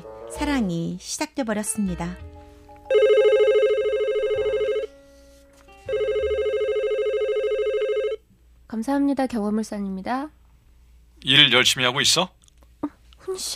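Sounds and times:
speech: 0.4 - 2.3, 8.8 - 10.4, 11.2 - 13.5
office telephone ringing with trilling warble: 2.9 - 4.9, 5.9 - 8.2.

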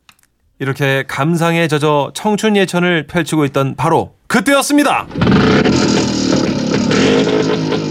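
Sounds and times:
speech: 0.6 - 6.1, 7.1 - 7.8
motorcycles roaring past at a beach: 5.1 - 7.8.

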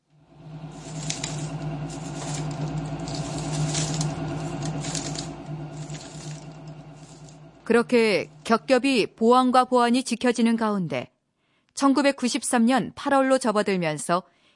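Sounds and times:
paper shredder motor humming: 0.0 - 9.0
pages of a report crackling and rustling through shredder blades: 0.4 - 7.7
speech: 7.7 - 11.1, 11.8 - 14.3.

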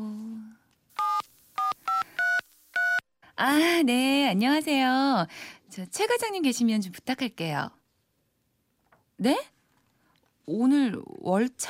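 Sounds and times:
telephone keypad tones dialing an office number: 1.0 - 3.0
speech: 3.4 - 7.8, 9.2 - 9.6, 10.4 - 11.6.

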